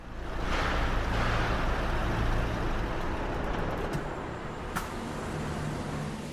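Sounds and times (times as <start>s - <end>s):
bus engine idling at a gas station: 0.0s - 6.3s.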